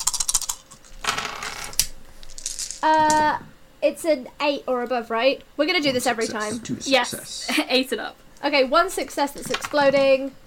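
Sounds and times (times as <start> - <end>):
dice rolling on a hard tabletop: 0.0 - 3.2
speech: 2.8 - 10.4.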